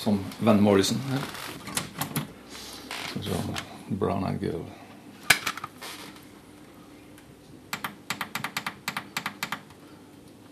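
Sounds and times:
speech: 0:00.0 - 0:01.5, 0:03.2 - 0:04.8
typing on a computer keyboard: 0:07.8 - 0:09.8.

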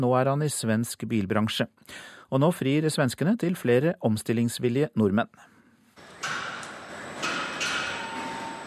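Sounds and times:
speech: 0:00.0 - 0:05.5
dense mechanical hum of industrial factory: 0:06.0 - 0:08.6.

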